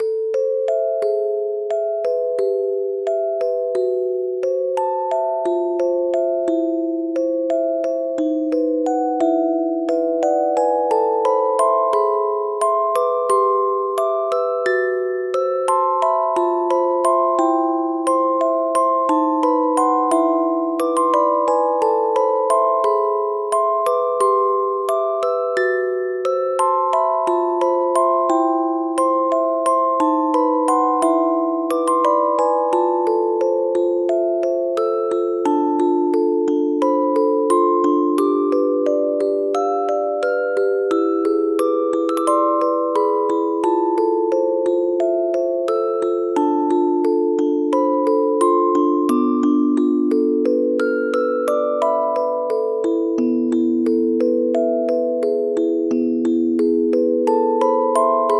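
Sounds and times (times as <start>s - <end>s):
dark music box melody: 0.0s - 58.3s.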